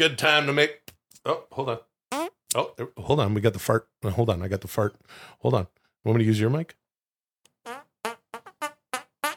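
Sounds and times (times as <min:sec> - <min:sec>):
speech: 0:00.0 - 0:01.9, 0:02.5 - 0:06.8
mouth-made fart sounds: 0:02.1 - 0:02.6, 0:07.6 - 0:09.3.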